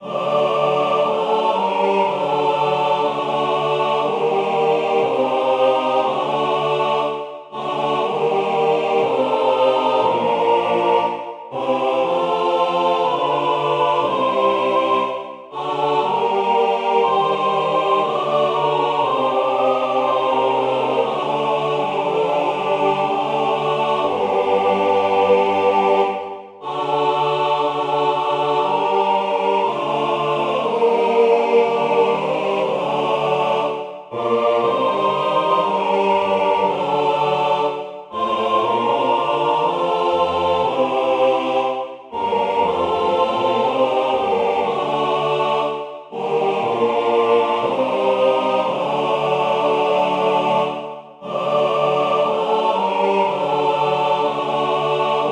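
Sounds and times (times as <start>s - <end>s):
choir singing: 0.0s - 55.2s.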